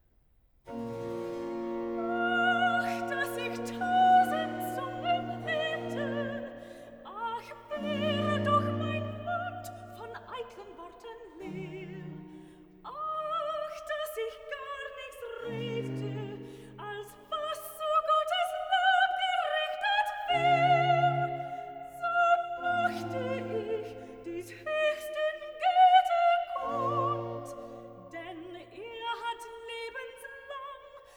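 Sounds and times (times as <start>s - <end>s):
soprano singing recitative: 0.7s - 31.1s.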